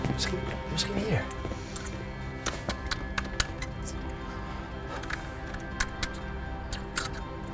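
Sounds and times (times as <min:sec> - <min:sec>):
speech: 0:00.1 - 0:01.7
small key scraping and clicking in a large door lock: 0:01.7 - 0:07.4.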